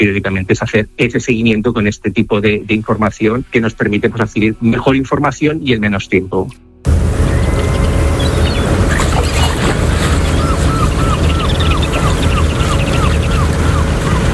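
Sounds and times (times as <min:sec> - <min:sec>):
speech: 0:00.0 - 0:07.0
harbour water washing at the port of Arguineguín in Gran Canaria: 0:06.9 - 0:14.3
low boat rumble in a harbour in Gran Canaria: 0:06.9 - 0:14.3.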